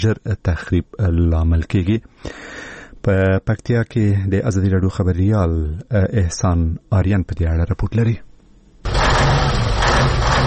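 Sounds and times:
speech: 0:00.0 - 0:08.3
overloaded truck carrying cement engine rumbling in Paktia: 0:08.8 - 0:10.4.

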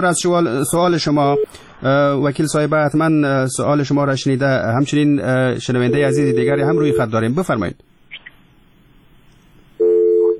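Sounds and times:
speech: 0:00.0 - 0:07.9
telephone line tone after a call drops on a call-in line: 0:05.8 - 0:07.1, 0:09.8 - 0:10.3.

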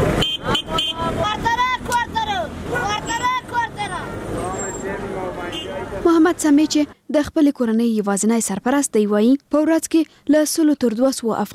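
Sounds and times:
city street traffic in Afghanistan: 0:00.0 - 0:11.5
car horn toots: 0:00.1 - 0:01.3, 0:04.6 - 0:05.9
speech: 0:06.4 - 0:11.5.

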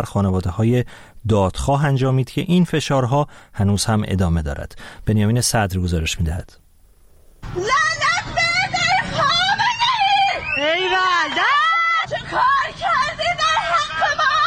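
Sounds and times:
speech: 0:00.0 - 0:06.6, 0:07.4 - 0:08.1
woman shouting and wailing on a pedestrian bridge over a highway in Tehran: 0:07.5 - 0:14.4.

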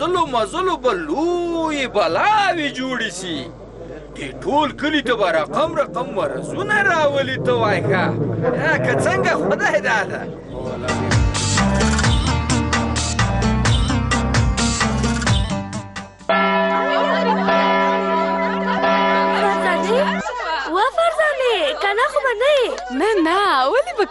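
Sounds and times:
speech: 0:00.0 - 0:11.9, 0:22.0 - 0:24.0
dense rhythmic music-like sound: 0:10.6 - 0:20.3
school recess bell ringing: 0:16.3 - 0:20.8
laughter: 0:16.8 - 0:24.0.

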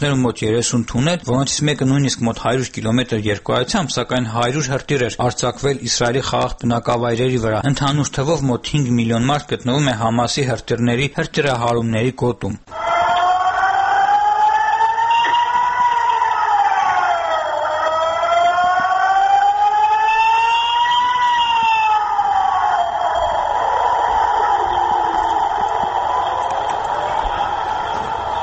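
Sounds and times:
speech: 0:00.0 - 0:12.8
air raid siren in Tel Aviv warning of incoming rocket attacks: 0:12.7 - 0:28.4.

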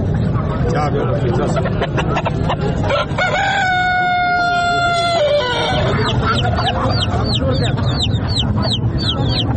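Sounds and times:
busy background of voices at a poultry market: 0:00.0 - 0:09.5
chickens clucking at a poultry market: 0:01.2 - 0:09.5
laughter: 0:01.4 - 0:02.8, 0:05.4 - 0:09.5
rooster crowing at a poultry market: 0:02.9 - 0:06.1
smaller birds chirping at a poultry market: 0:05.8 - 0:09.5.

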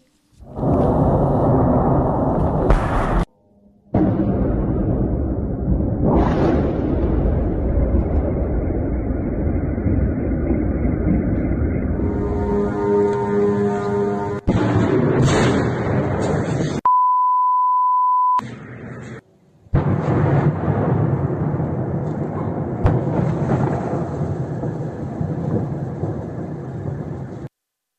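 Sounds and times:
heavy rumbling booms of Shahed kamikaze drone attack explosions: 0:00.4 - 0:03.3, 0:03.9 - 0:13.4, 0:14.3 - 0:16.8, 0:19.7 - 0:27.5
buzzing engine drone of Shahed kamikaze drone: 0:09.2 - 0:14.5
short electronic beep: 0:16.8 - 0:18.4.

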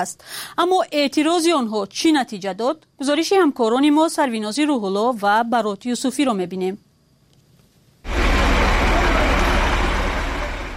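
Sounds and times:
speech: 0:00.0 - 0:06.8
heavy cargo trucks driving through a street in Dushanbe: 0:08.1 - 0:10.7.

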